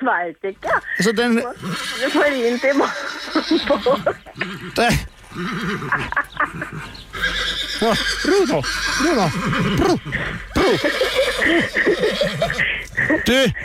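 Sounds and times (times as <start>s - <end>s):
speech: 0.0s - 13.6s
horse neighing: 0.6s - 13.1s
hooves clip-clopping: 0.6s - 13.6s
laughter: 2.7s - 7.1s, 7.8s - 13.6s.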